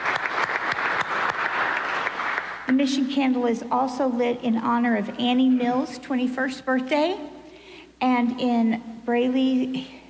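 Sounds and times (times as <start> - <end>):
church congregation clapping during a Sunday service: 0.0 - 2.7
speech: 2.7 - 7.4, 8.0 - 10.0.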